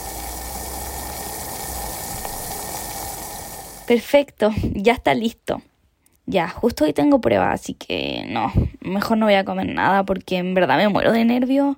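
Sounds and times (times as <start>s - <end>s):
water pouring into a container to boil for tea: 0.0s - 4.0s
speech: 3.9s - 5.7s, 6.3s - 11.7s.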